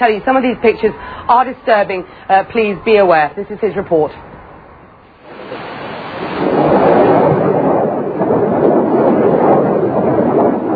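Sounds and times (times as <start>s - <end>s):
speech: 0.0s - 4.4s
rockets launching: 5.2s - 10.7s.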